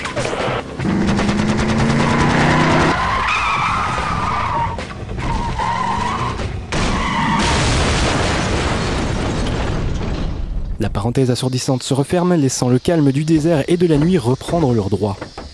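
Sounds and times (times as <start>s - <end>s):
car tires shrieking in a long skid as the driver loses control: 0.2s - 7.6s
car crashing into a junkyard: 0.8s - 10.8s
rumble of car wreckage: 2.7s - 11.0s
speech: 11.0s - 15.4s.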